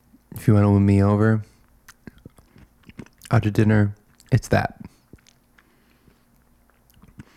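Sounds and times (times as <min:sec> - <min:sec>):
speech: 0:00.4 - 0:01.5, 0:03.3 - 0:04.9
crunching and chewing of meringue: 0:01.6 - 0:07.3.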